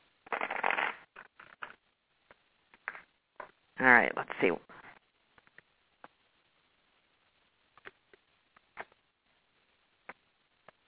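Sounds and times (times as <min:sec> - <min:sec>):
tarot cards being shuffled for a card reading: 0:00.2 - 0:01.8
speech: 0:03.8 - 0:04.7.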